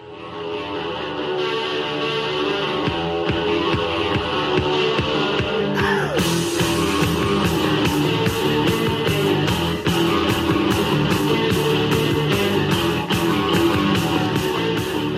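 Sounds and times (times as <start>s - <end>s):
driving guitar riff in post-punk rock song: 0.0s - 15.1s.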